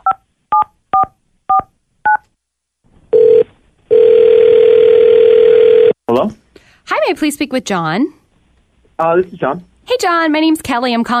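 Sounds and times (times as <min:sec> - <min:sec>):
electronic telephone ringing tone: 0:03.1 - 0:06.0
speech: 0:06.1 - 0:08.2, 0:09.0 - 0:11.1.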